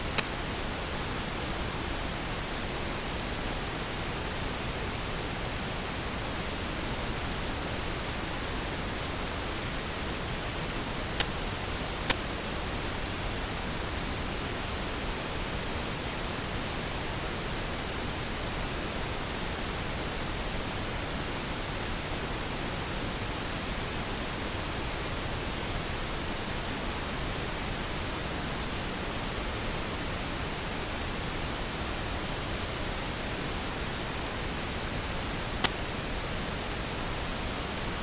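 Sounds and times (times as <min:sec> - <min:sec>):
steady pink noise: 0:00.0 - 0:38.0.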